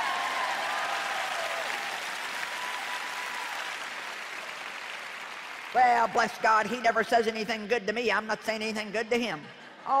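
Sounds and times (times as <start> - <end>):
large audience clapping: 0.0 - 6.4
speech: 5.7 - 9.9.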